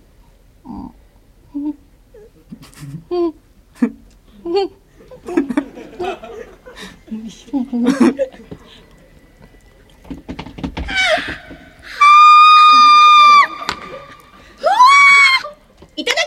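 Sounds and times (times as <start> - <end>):
laughter: 5.0 - 9.0, 12.7 - 15.4
speech: 7.5 - 8.3
person screaming wordlessly after drinking sour liquid: 10.9 - 14.0, 14.6 - 15.6.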